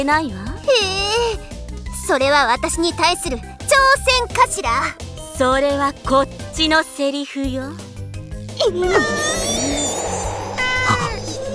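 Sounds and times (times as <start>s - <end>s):
speech: 0.0s - 1.5s, 2.1s - 7.9s, 8.6s - 9.4s
aggressive cat yowling: 8.9s - 11.4s
rushing blizzard: 9.0s - 11.5s.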